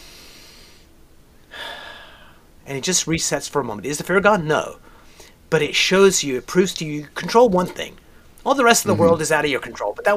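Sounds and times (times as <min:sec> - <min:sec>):
deep breath: 0:00.0 - 0:00.9, 0:01.5 - 0:02.5
speech: 0:02.7 - 0:04.9, 0:05.5 - 0:10.1.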